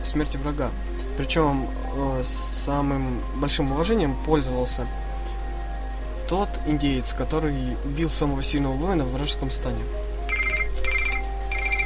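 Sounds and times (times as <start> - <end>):
speech: 0.1 - 5.0, 6.3 - 10.0
phone ringtone chirping: 10.3 - 11.8.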